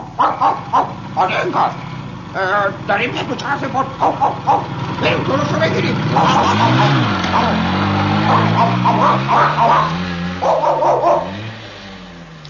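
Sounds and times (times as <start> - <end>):
dogs barking in quick bursts: 0.0 - 1.9, 3.7 - 4.9, 6.0 - 11.5
motorcycle engine approaching: 0.0 - 12.4.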